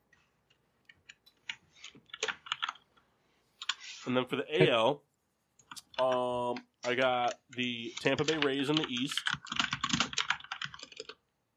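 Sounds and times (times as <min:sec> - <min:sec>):
loud clattering of keys on a computer keyboard: 0:01.4 - 0:02.8, 0:07.2 - 0:11.2
speech: 0:04.1 - 0:05.1, 0:06.0 - 0:09.6.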